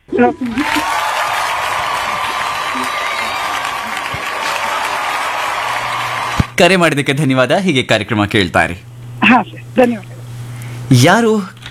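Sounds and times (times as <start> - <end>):
speech: 0.2 - 0.8, 6.6 - 10.1, 10.9 - 11.6
loud applause from an audience: 0.3 - 6.5.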